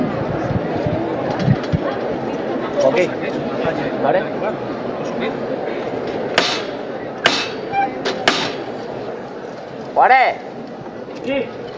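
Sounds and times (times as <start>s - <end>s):
murmur of crowd chatter in a plaza: 0.0s - 11.7s
speech: 2.9s - 5.6s, 10.0s - 10.5s, 11.2s - 11.6s
metal knocker striking a procession float bearing a raised cross: 6.4s - 8.6s.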